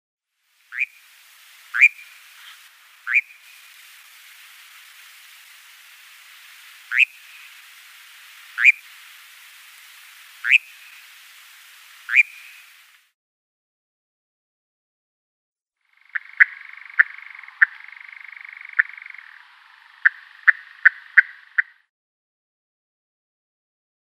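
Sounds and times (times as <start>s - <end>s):
adult Eurasian nightjar flight call: 0.7s - 13.0s, 16.0s - 21.8s.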